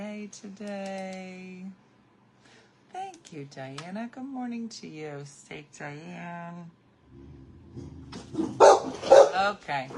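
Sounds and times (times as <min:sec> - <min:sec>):
speech: 0:00.3 - 0:01.8, 0:02.9 - 0:09.9
dogs barking: 0:08.3 - 0:09.9.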